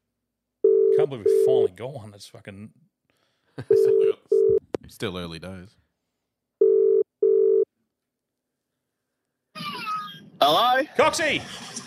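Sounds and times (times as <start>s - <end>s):
ringback tone of an outgoing telephone call: 0.6s - 1.7s, 3.7s - 4.6s, 6.6s - 7.7s
speech: 1.0s - 2.9s, 3.6s - 4.2s, 4.9s - 5.8s, 10.4s - 11.8s.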